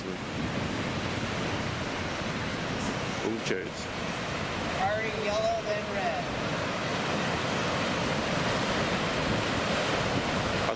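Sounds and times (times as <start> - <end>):
sea waves rolling in on a very windy shore: 0.0 - 10.7
strong buffeting wind noise: 0.0 - 10.7
speech: 3.5 - 4.2, 5.0 - 6.4.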